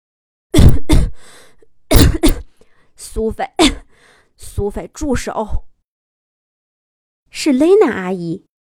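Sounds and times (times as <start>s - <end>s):
loud harsh coughs: 0.6s - 1.2s, 1.9s - 2.5s
wheezy breath: 1.1s - 1.6s, 3.9s - 4.4s
speech: 3.1s - 3.8s, 4.4s - 5.7s, 7.3s - 8.5s.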